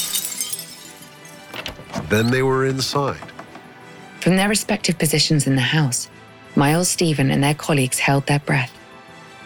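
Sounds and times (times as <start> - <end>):
scattered glass fragments tinkling: 0.0 - 1.5
glass pane in front door shattering: 0.0 - 2.5
speech: 1.6 - 3.3, 4.2 - 8.8.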